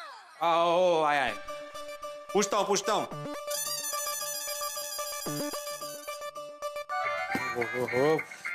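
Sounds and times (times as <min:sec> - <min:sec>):
speech: 0:00.4 - 0:01.6, 0:02.3 - 0:03.7, 0:05.3 - 0:05.6, 0:07.6 - 0:08.4
mobile phone ringtone playing a bright repeating electronic melody: 0:03.5 - 0:06.4.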